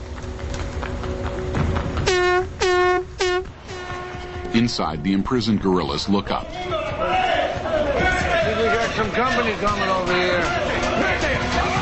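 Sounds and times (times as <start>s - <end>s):
road noise: 0.0s - 11.7s
truck engine rumbling: 0.0s - 11.7s
canopied truck air horn blasts: 2.0s - 5.0s
speech: 4.6s - 6.7s, 9.0s - 10.6s.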